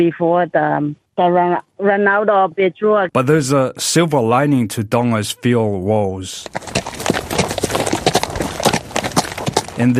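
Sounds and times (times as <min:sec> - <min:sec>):
speech: 0:00.0 - 0:06.8, 0:09.8 - 0:09.9
horse hooves clip-clopping as a family rides on horseback in Nuku'alofa Tonga: 0:06.4 - 0:09.9.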